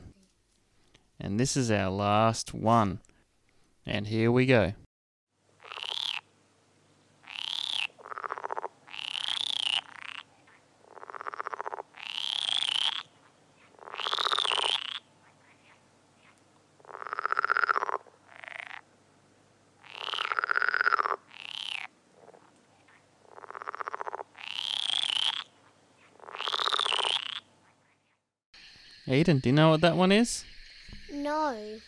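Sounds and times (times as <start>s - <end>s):
speech: 1.2s - 3.1s, 3.9s - 4.8s, 29.2s - 30.5s
frogs croaking: 5.6s - 6.3s, 7.2s - 19.0s, 19.8s - 31.8s.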